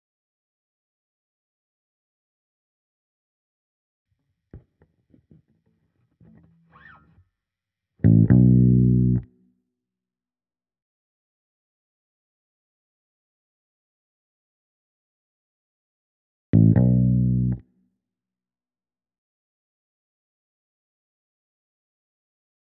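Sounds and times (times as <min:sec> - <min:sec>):
clean bass guitar: 0:08.0 - 0:09.3, 0:16.6 - 0:17.6.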